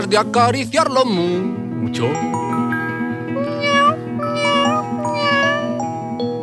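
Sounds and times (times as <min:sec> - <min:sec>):
speech: 0:00.0 - 0:02.4
song about animals: 0:01.1 - 0:06.0
cat meowing: 0:03.3 - 0:05.9.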